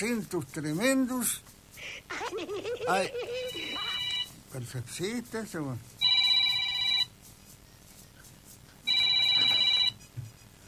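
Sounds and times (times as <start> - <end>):
speech: 0.0 - 3.4, 4.5 - 5.9
telephone ringing: 3.4 - 4.3, 6.0 - 7.1, 8.9 - 10.0.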